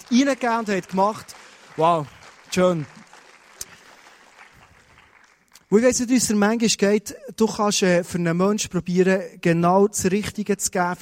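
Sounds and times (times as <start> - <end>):
audience applauding: 0.0 - 5.8
speech: 0.1 - 3.0, 5.7 - 10.9.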